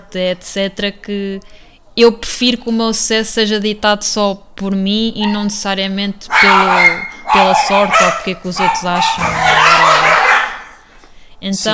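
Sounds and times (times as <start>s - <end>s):
speech: 0.1s - 10.0s, 11.4s - 11.7s
dogs barking in a house: 5.2s - 10.9s.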